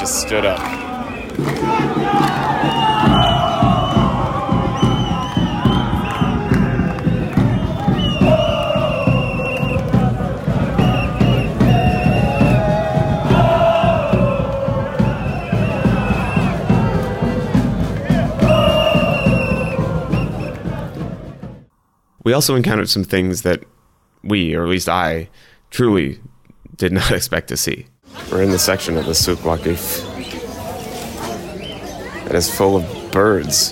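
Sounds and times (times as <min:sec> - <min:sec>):
large crowd of football fans chanting and cheering while walking past in a market: 0:00.0 - 0:21.7
speech: 0:00.2 - 0:00.8, 0:01.4 - 0:03.2, 0:22.3 - 0:30.2, 0:32.3 - 0:33.7.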